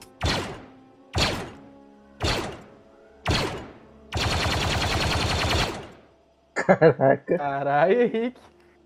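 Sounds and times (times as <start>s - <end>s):
single gunshots with tails: 0.2s - 1.6s, 2.2s - 2.7s, 3.3s - 6.0s
burst of rapid automatic gunfire: 2.2s - 2.6s, 3.3s - 6.0s
speech: 6.7s - 8.6s.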